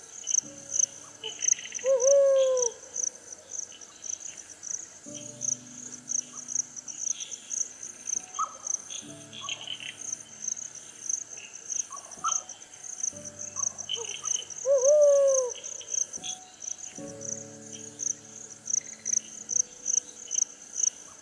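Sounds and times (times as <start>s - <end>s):
night chorus of crickets and insects: 0.0s - 21.2s
brown wood owl hooting: 1.0s - 3.1s, 13.6s - 16.4s.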